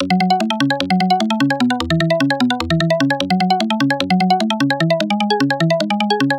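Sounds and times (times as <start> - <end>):
melodic arpeggio loop in F sharp: 0.0 - 6.3.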